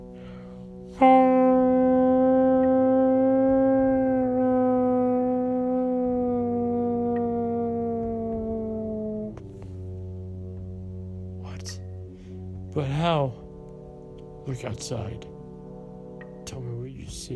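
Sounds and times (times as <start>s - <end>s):
speech: 1.0s - 1.4s, 12.8s - 13.4s, 14.4s - 15.4s, 16.5s - 17.3s
long loud howl: 1.0s - 9.5s.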